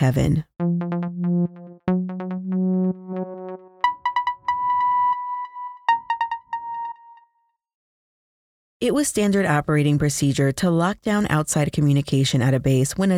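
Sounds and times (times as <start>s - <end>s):
speech: 0.0s - 0.5s, 8.8s - 13.1s
phone electronic melodic ringtone: 1.0s - 7.2s.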